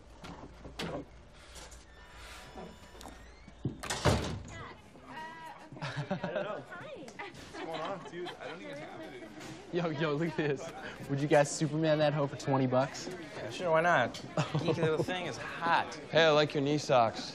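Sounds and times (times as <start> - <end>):
door swinging shut with a solid thud: 3.2 - 4.6
people chattering and laughing: 4.5 - 17.3
speech: 8.0 - 17.3.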